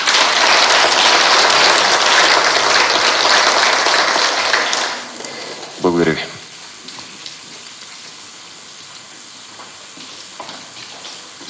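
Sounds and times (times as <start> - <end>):
crowd applauding: 0.0 - 6.2.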